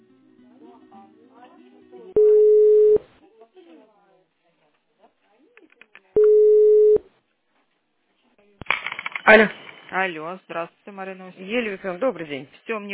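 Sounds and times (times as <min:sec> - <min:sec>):
telephone line tones while a school's call is transferred: 0:02.2 - 0:03.0, 0:06.2 - 0:07.0
speech: 0:09.3 - 0:12.9.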